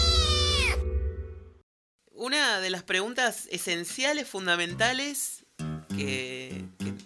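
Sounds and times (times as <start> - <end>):
cat meowing with a falling pitch: 0.0 - 0.8
speech: 2.2 - 5.4, 6.0 - 7.0.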